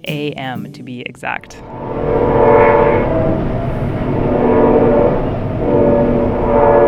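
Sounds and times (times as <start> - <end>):
speech: 0.0 - 2.3
train horn blasts from a passing train at night: 1.6 - 6.8.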